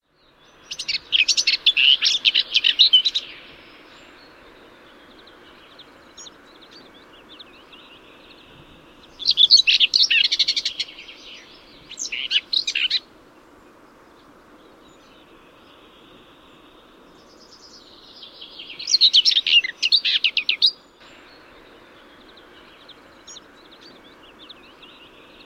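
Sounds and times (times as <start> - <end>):
garden warbler singing: 0.0 - 13.0, 14.6 - 25.4.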